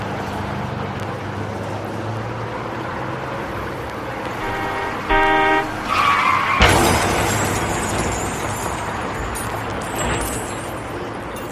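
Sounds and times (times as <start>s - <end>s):
steady traffic rumble: 0.0s - 11.5s
tires screeching: 2.6s - 10.6s
car horn blaring: 4.3s - 6.4s
loud crash with shattering: 4.4s - 10.9s.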